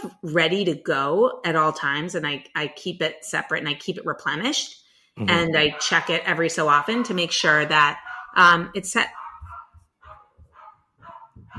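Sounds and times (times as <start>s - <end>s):
speech: 0.0s - 9.2s
dog barking: 5.3s - 11.5s.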